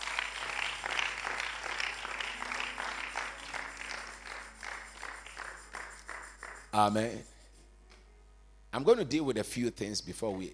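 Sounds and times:
audience applauding: 0.0s - 6.7s
speech: 6.8s - 7.3s, 8.7s - 10.5s.

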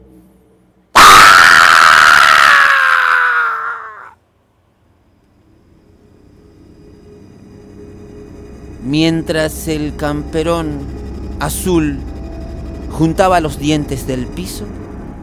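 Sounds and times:
faint low rumble: 0.0s - 0.9s, 4.2s - 15.2s
police infantry agents shouting a war cry: 1.0s - 4.1s
speech: 8.9s - 12.1s, 12.9s - 14.8s.

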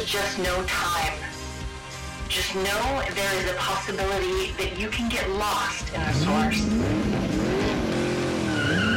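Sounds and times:
speech: 0.0s - 1.3s, 2.3s - 7.4s
food truck engine roaring as it speeds along: 5.6s - 8.9s
food truck tires squealing as it skids: 6.0s - 8.9s.

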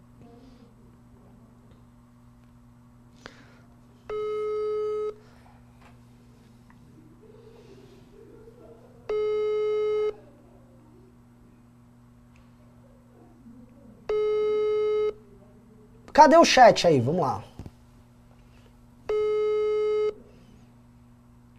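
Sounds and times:
faint steady low hum: 0.0s - 21.5s
telephone busy signal on an outgoing call: 4.1s - 5.2s, 9.1s - 10.2s, 14.1s - 15.2s, 19.1s - 20.2s
speech: 16.2s - 17.5s.

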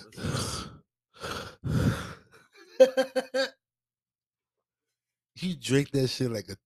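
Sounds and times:
voice imitating heavy labored breathing: 0.0s - 2.5s
speech: 5.4s - 6.6s.

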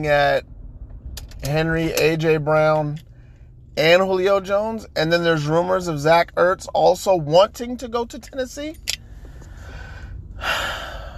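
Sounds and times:
speech: 0.0s - 0.5s, 1.4s - 3.1s, 3.8s - 8.9s
deep inhale: 9.0s - 11.1s.

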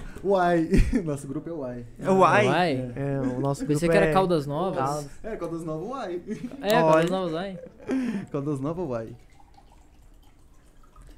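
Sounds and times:
speech: 0.2s - 9.3s
laughter: 2.9s - 4.0s, 5.0s - 8.5s
drinking water being poured in a faint steady trickle: 4.2s - 11.1s.

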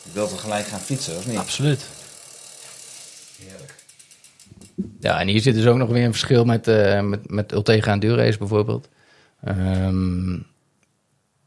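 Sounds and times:
speech: 0.0s - 2.0s, 4.8s - 10.5s
electronic 11-speed bicycle derailleur motor with a matte finish shifting gears: 0.0s - 4.8s.

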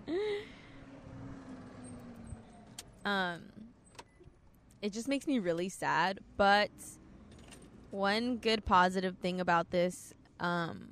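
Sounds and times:
loud car passing by: 0.6s - 3.0s
speech: 3.0s - 3.6s, 4.8s - 7.0s, 7.9s - 10.9s.

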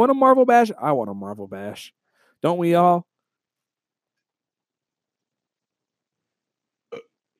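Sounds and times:
speech: 0.0s - 3.1s
single short suppressed burp: 6.9s - 7.2s.

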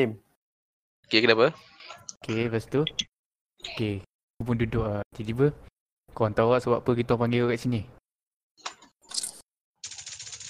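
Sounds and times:
speech: 0.0s - 0.2s, 1.1s - 8.0s
computer keyboard typing: 8.7s - 10.4s.

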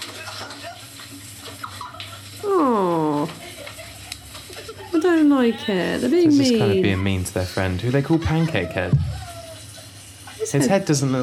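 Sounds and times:
shower water running: 0.0s - 11.2s
laughter: 0.1s - 7.2s
murmuring voices: 5.0s - 10.6s
speech: 5.4s - 9.2s, 10.5s - 11.2s.

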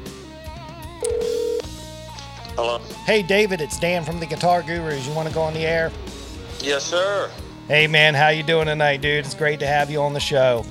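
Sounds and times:
ringback tone of an outgoing phone call: 1.0s - 1.7s
speech: 2.6s - 10.6s.

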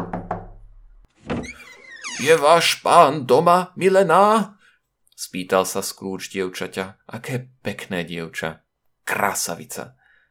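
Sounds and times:
man knocking on a wooden door: 0.0s - 0.6s
scraping sound with a faint high creak: 1.1s - 2.7s
speech: 2.2s - 4.6s, 5.2s - 10.0s.

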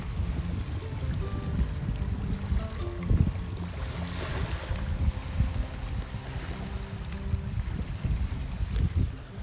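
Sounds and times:
ocean waves lapping at the shore: 0.0s - 9.4s
rumbling low wind noise: 0.0s - 9.4s.

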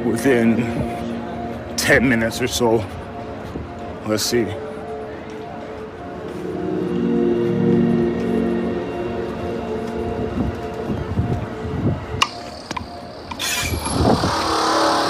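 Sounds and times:
steady street noise: 0.0s - 15.0s
speech: 0.1s - 1.0s, 1.8s - 3.0s, 4.0s - 4.7s
city bus engine rumbling and revving pulling away from stop: 13.3s - 15.0s.

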